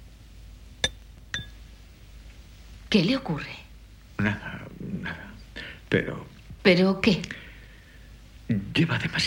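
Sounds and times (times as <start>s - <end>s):
spoon clinking against a soup bowl at a dinner table: 0.8s - 1.6s
speech: 2.9s - 3.6s, 4.2s - 5.3s, 5.9s - 7.4s, 8.5s - 9.2s.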